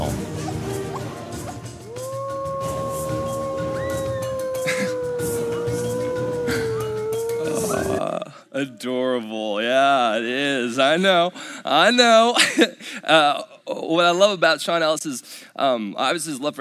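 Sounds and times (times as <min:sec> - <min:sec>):
thinner higher-pitched wolf howls: 0:00.3 - 0:08.9
long steady wolf howl: 0:01.8 - 0:08.3
speech: 0:08.6 - 0:16.5.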